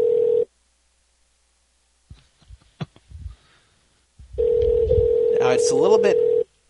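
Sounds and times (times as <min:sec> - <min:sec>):
outgoing phone call ringback tone: 0:00.0 - 0:00.5, 0:04.4 - 0:06.5
speech: 0:05.6 - 0:06.6.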